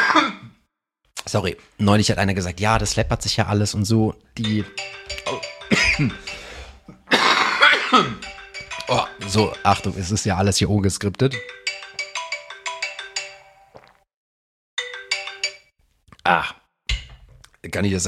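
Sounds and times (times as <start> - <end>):
person coughing: 0.0 - 0.6, 5.3 - 8.2
speech: 1.3 - 5.4, 6.0 - 6.4, 8.0 - 8.3, 8.9 - 11.6, 16.3 - 16.6, 17.6 - 18.0
alarm clock electronic melody: 4.4 - 7.0, 8.2 - 10.7, 11.3 - 13.7, 14.8 - 15.7.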